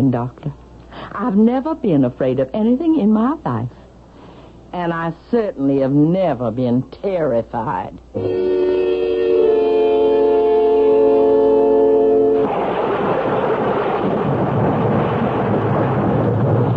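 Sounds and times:
speech: 0.0 - 3.8, 4.7 - 8.5
sustained droning tone: 8.1 - 12.8
heavy rain: 12.2 - 16.7
stormy rumble: 12.3 - 16.7.

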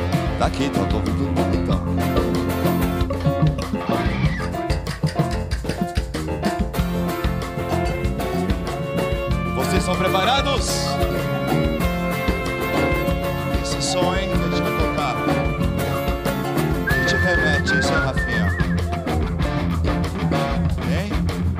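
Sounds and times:
full steady band accompaniment: 0.0 - 21.5
person whistling a short bright melodic phrase: 16.8 - 19.2.

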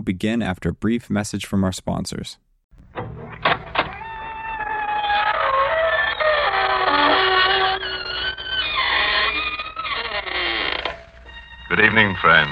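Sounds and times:
speech: 0.0 - 2.4, 11.8 - 12.5
door creaking: 2.8 - 12.5.

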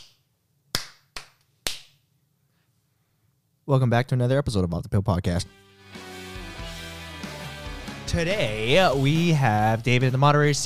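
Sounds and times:
sharp crisp hand claps: 0.0 - 2.0
speech: 3.7 - 5.7, 8.2 - 10.6.

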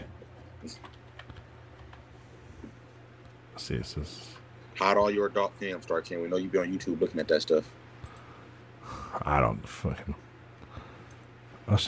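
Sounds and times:
steady low hum: 0.0 - 11.8
speech: 0.6 - 0.9, 3.6 - 7.8, 9.2 - 10.2
computer keyboard typing during graphic design: 0.6 - 2.1.

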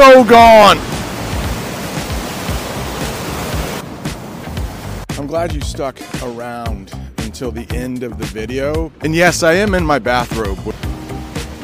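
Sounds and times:
speech: 0.0 - 0.9, 5.3 - 11.0
rushing river water: 0.0 - 5.2, 9.2 - 11.6.

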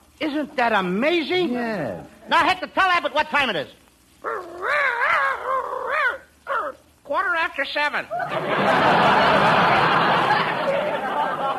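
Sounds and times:
speech: 0.2 - 4.8, 7.1 - 10.0
person imitating a dog growling: 4.2 - 6.8
laughter: 8.1 - 11.5.

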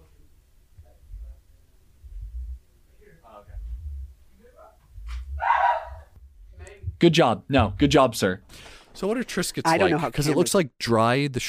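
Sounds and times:
low rumbling background: 0.8 - 8.5
dog giving a single sharp bark: 5.4 - 6.1
speech: 7.0 - 11.4.

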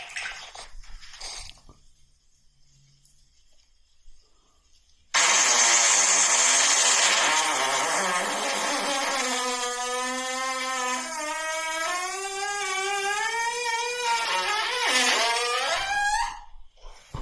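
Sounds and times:
long fart rising from deep to high pitch: 5.2 - 16.4.

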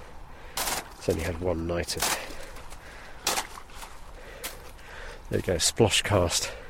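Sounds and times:
very thin ice cracking with a metallic ring in cold weather: 0.6 - 4.0
speech: 1.0 - 2.3, 5.3 - 6.6.

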